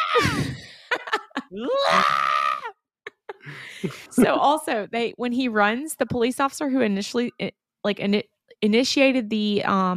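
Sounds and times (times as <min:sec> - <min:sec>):
speech: 0:01.5 - 0:02.2, 0:03.8 - 0:09.9
man screaming while being tased by police: 0:01.5 - 0:02.8.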